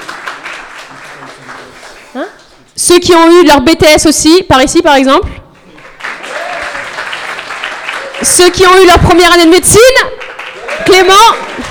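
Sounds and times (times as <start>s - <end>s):
audience applause: 0.0s - 2.1s, 5.6s - 8.5s, 10.2s - 11.6s
speech: 2.1s - 5.4s, 8.2s - 10.2s, 10.9s - 11.5s.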